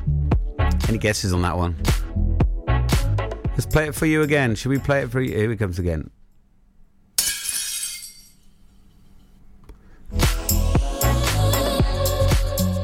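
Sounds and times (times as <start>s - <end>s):
busy music-like sound: 0.0s - 5.4s, 10.1s - 12.8s
speech: 0.9s - 2.2s, 3.6s - 6.2s
plate smashing: 7.2s - 8.8s.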